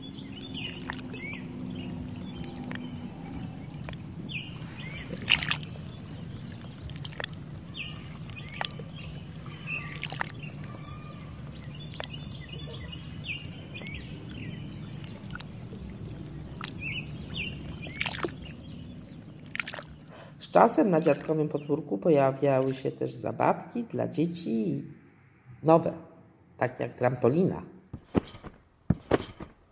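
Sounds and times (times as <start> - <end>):
bird chirps: 0.0 - 20.3
water sloshing and lapping against a small boat on a lake: 0.0 - 23.5
steady low outdoor rumble: 0.0 - 27.7
speech: 20.6 - 25.0, 25.6 - 26.0, 26.6 - 28.4.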